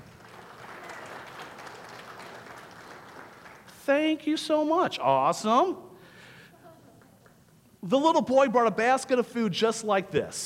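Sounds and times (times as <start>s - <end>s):
audience applause: 0.0s - 3.7s
speech: 3.9s - 5.9s, 7.8s - 10.4s.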